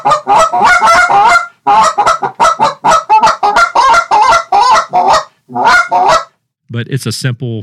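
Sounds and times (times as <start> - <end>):
speech: 0.0 - 1.2, 6.8 - 7.6
Canada goose call blown, honking and clucking: 0.0 - 6.3.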